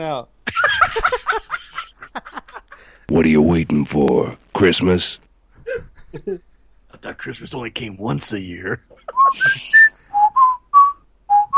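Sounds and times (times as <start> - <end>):
speech: 0.0 - 0.4, 1.0 - 1.9, 3.1 - 5.1, 6.1 - 9.9
laughter: 0.5 - 3.0, 5.6 - 6.4, 8.4 - 9.8
wolf whistle: 9.2 - 11.5.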